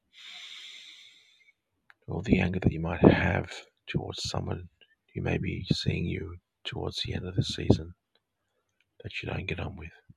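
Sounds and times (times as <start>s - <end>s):
deep breath in during a guided breathing exercise: 0.1s - 1.5s
speech: 2.1s - 8.0s, 9.0s - 10.0s.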